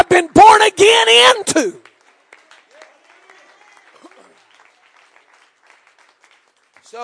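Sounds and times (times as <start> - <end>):
preacher speaking a sermon: 0.0 - 1.8
speech: 0.0 - 1.9
church audience clapping during a sermon: 0.0 - 7.0.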